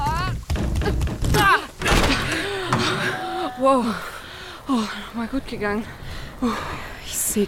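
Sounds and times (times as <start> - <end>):
stuck door scraping and creaking as it is shoved open: 0.5 - 3.5
speech: 3.6 - 7.4.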